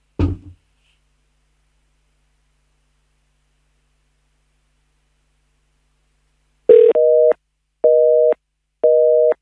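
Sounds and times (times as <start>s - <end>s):
brief thud: 0.2s - 0.6s
telephone busy signal: 6.7s - 9.3s.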